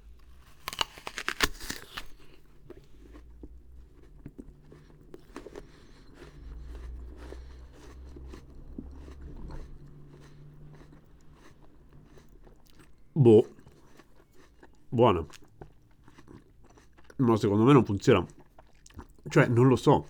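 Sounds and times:
biting and crunching into an apple: 0.0s - 20.0s
wet chewing and smacking: 0.1s - 20.0s
speech: 13.2s - 13.5s, 15.0s - 15.5s, 17.2s - 18.4s, 19.3s - 20.0s.

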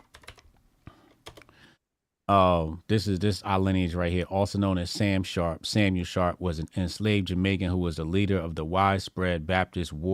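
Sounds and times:
typing on a computer keyboard: 0.0s - 0.5s, 1.2s - 1.5s
speech: 2.3s - 10.1s.

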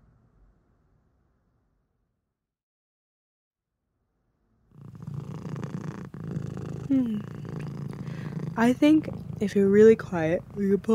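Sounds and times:
cat purring: 4.7s - 10.9s
speech: 6.9s - 7.4s, 8.6s - 10.9s.

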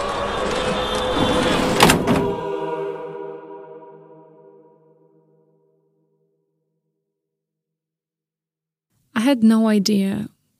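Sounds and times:
heavy door slamming shut: 0.4s - 2.7s
speech: 9.3s - 10.4s.

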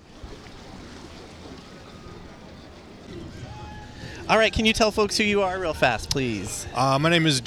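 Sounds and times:
boat rumbling on open water on the bay: 0.0s - 7.4s
wash of water on the bay: 0.0s - 7.4s
wind buffeting on the bay: 0.0s - 7.4s
speech: 4.3s - 7.4s.

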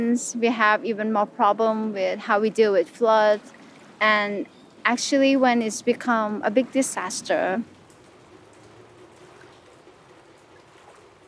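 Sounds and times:
speech: 0.0s - 7.8s
heavy rain pouring: 5.6s - 11.2s.

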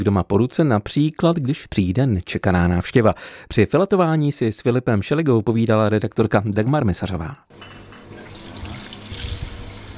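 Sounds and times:
speech: 0.0s - 7.8s
water running from a tap for knife sharpening: 8.2s - 9.9s.

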